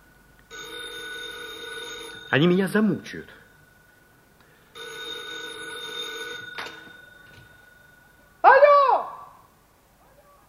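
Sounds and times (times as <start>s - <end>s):
telephone bell ringing with steady metallic trill: 0.5s - 8.4s
speech: 2.3s - 3.4s.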